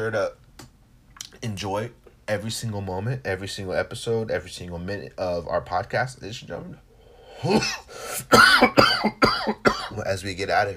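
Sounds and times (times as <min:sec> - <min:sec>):
speech: 0:00.0 - 0:00.4, 0:01.4 - 0:06.8, 0:07.4 - 0:10.7
harsh rasping coughs: 0:07.4 - 0:10.0.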